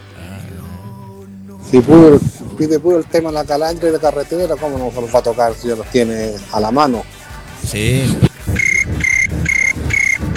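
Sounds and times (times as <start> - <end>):
speech: 1.7 - 8.3
cricket chirping in trilled bursts: 8.5 - 10.3.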